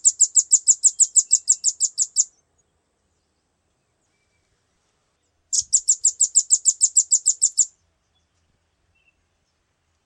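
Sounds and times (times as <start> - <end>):
velvet-fronted nuthatch giving rapid trills of high chip notes: 0.0 - 2.3, 5.5 - 7.7.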